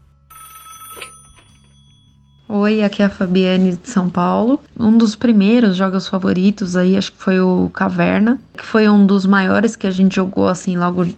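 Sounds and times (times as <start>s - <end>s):
telephone ringing for an incoming call with bright electronic ring: 0.0s - 3.4s
speech: 2.5s - 11.1s.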